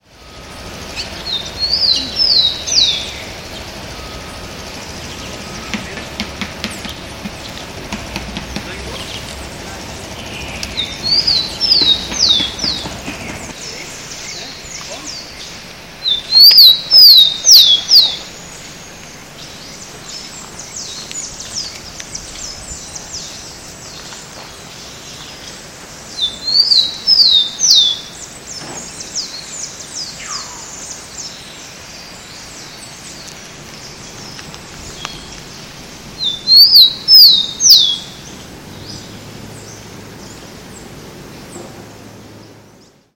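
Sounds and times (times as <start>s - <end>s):
Zonotrichia capensis singing: 0.0s - 43.1s.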